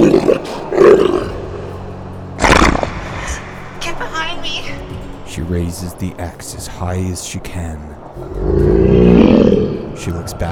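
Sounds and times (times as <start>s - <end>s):
wolf snarling and roaring jumping from behind a thorn bush in a forest: 0.0s - 1.7s, 2.4s - 3.3s, 8.2s - 10.1s
speech: 5.5s - 9.0s, 10.0s - 10.5s.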